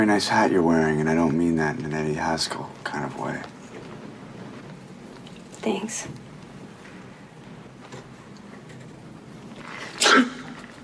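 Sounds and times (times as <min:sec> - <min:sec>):
speech: 0:00.0 - 0:03.6, 0:05.6 - 0:06.2
short sharp sneeze: 0:09.7 - 0:10.7.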